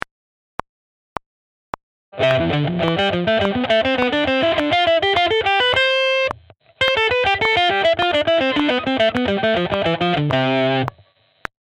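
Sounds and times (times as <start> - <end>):
guitar hybrid picking: 2.2 - 11.0.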